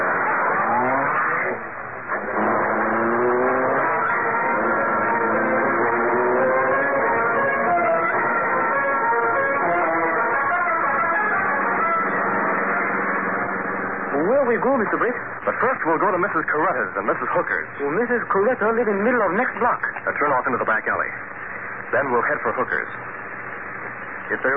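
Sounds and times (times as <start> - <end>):
powerful car engine roaring to life and accelerating away: 0.0 - 17.7
speech: 15.8 - 23.0, 24.3 - 24.5.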